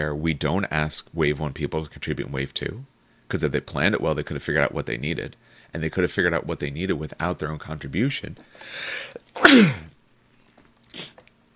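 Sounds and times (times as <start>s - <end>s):
speech: 0.0s - 9.9s
person sneezing: 8.7s - 9.9s, 10.9s - 11.2s
sniff: 10.9s - 11.3s.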